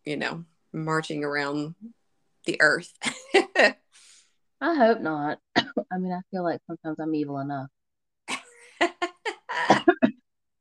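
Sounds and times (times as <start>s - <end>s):
speech: 0.0s - 7.8s
person coughing harshly: 9.5s - 10.2s.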